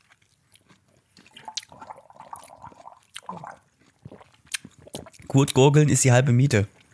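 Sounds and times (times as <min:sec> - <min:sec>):
lip smacks and small mouth clicks: 0:00.5 - 0:05.6
person sipping a drink with a soft slurp: 0:00.6 - 0:05.6
wet swallowing: 0:01.2 - 0:05.6
speech: 0:05.3 - 0:06.8.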